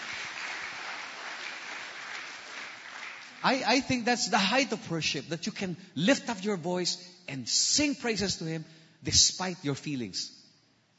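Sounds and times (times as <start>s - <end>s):
congregation applauding during a worship service: 0.0s - 4.0s
speech: 3.4s - 10.4s.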